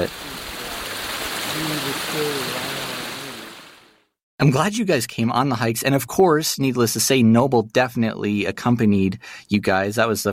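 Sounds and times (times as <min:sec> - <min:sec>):
speech: 0:00.0 - 0:00.2, 0:01.5 - 0:02.9, 0:04.4 - 0:10.3
small creek on a hiking trail spilling over rocks: 0:00.0 - 0:03.9
faint voices murmuring: 0:01.5 - 0:03.5.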